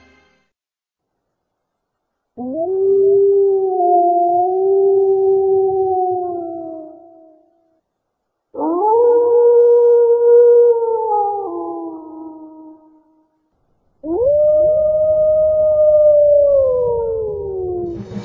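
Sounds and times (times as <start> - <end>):
animal howling outside: 2.4 - 7.5, 8.6 - 13.2, 14.0 - 18.0.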